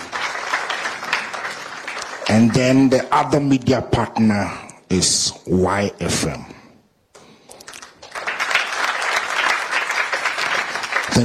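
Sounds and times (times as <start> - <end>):
audience applauding: 0.0 - 3.4, 7.7 - 11.2
speech: 2.3 - 6.6.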